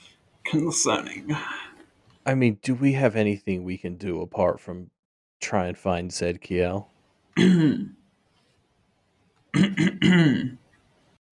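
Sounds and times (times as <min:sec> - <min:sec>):
speech: 0:00.5 - 0:08.0, 0:09.5 - 0:10.6
person coughing to draw attention: 0:07.4 - 0:08.0, 0:09.6 - 0:10.6.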